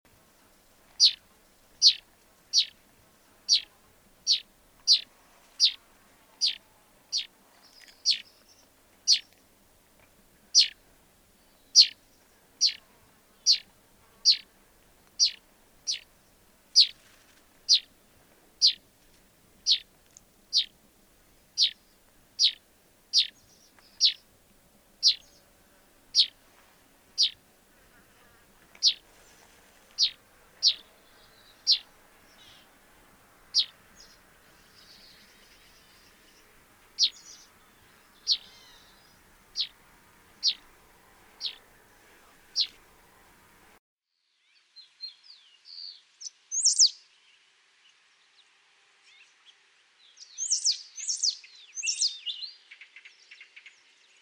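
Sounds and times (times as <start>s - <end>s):
finch calling: 1.0s - 1.2s, 1.8s - 2.8s, 3.4s - 5.8s, 6.4s - 9.4s, 10.5s - 10.8s, 11.6s - 12.0s, 12.6s - 12.8s, 13.4s - 14.5s, 15.2s - 16.1s, 16.7s - 17.0s, 17.6s - 17.9s, 18.6s - 18.8s, 19.6s - 19.9s, 20.5s - 20.8s, 21.6s - 24.3s, 25.0s - 25.4s, 26.1s - 26.4s, 27.1s - 27.4s, 28.7s - 29.1s, 29.9s - 32.8s, 33.4s - 43.8s.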